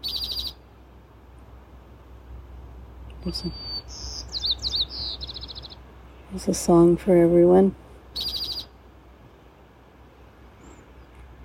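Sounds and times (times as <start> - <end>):
birds singing in chirps and whistled trills: 0.0 - 0.7, 3.1 - 8.8, 10.5 - 11.3
speech: 3.2 - 3.7, 6.3 - 8.3.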